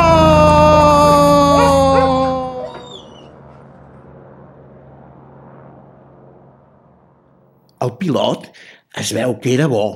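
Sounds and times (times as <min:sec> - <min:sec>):
female dog howling and yelping: 0:00.1 - 0:03.5
speech: 0:07.8 - 0:09.9.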